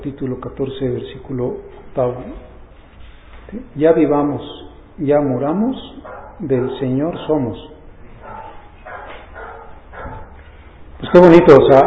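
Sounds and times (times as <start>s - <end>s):
speech: 0.0s - 2.5s, 3.5s - 7.7s, 11.0s - 11.8s
thin continuous hiss: 0.0s - 11.8s
phone sound that resembles a dog barking: 8.1s - 10.4s.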